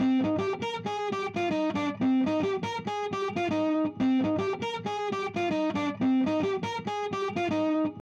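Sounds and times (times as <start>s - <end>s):
acoustic guitar through amplifier and cabinet: 0.0s - 8.0s.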